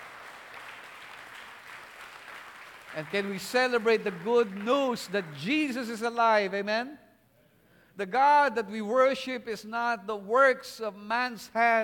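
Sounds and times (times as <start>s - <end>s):
church congregation faint applause: 0.0s - 5.4s
speech: 2.9s - 7.0s, 8.0s - 11.8s.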